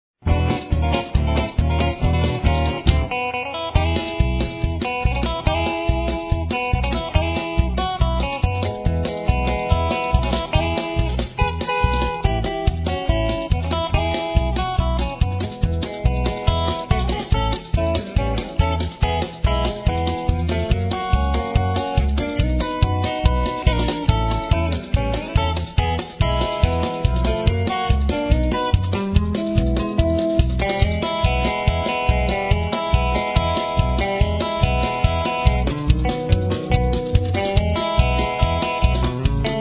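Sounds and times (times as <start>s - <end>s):
steel guitar playing: 0.3s - 39.5s.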